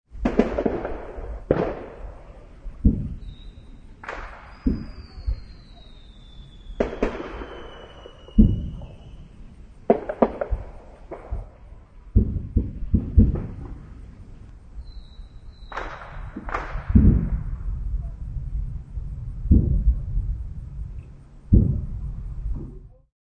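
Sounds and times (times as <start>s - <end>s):
fireworks in a neighbourhood: 0.2s - 23.0s.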